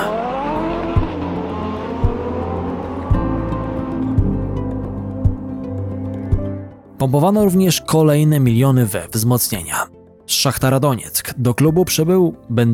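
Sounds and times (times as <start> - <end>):
powerful sports car engine revving: 0.0 - 5.4
tires screeching: 0.0 - 7.0
speech: 7.0 - 12.7.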